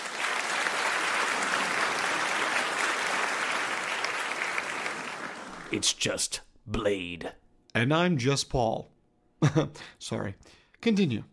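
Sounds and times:
sizable crowd applauding: 0.0s - 5.9s
speech: 5.7s - 11.3s.

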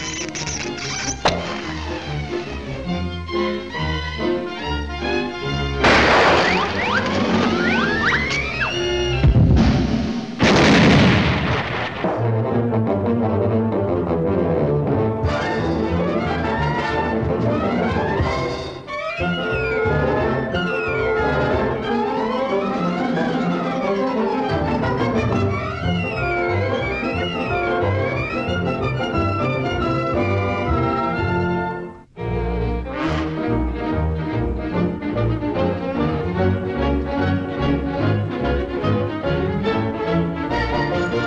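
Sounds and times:
frantic orchestral cartoon chase music: 0.0s - 10.2s, 12.1s - 41.2s
crashing and smashing sound effects: 5.8s - 12.4s.

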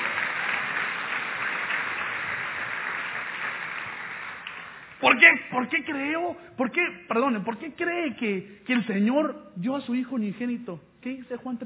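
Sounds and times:
church audience applauding during a sermon: 0.0s - 5.0s
speech: 5.0s - 11.6s.

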